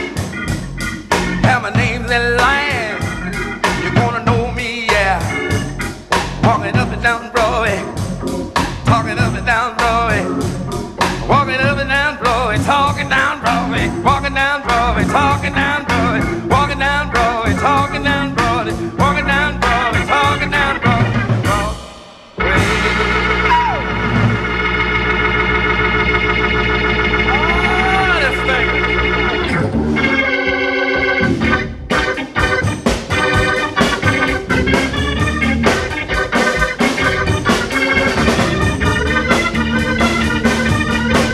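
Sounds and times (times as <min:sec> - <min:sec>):
loud driving rock and roll song: 0:00.0 - 0:41.3
pounding piano: 0:00.0 - 0:41.3
person singing: 0:01.4 - 0:05.5, 0:11.3 - 0:24.0, 0:27.3 - 0:28.8.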